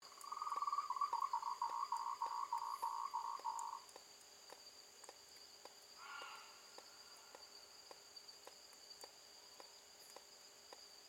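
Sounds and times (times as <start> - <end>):
frog calling with a fast train of short pulsed notes in the evening: 0.1 - 3.8, 6.0 - 6.7.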